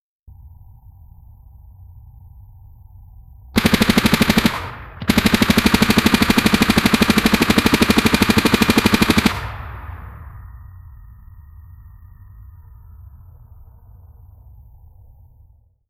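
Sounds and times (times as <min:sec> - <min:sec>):
slow powerful machine gun firing: 0:03.6 - 0:10.4.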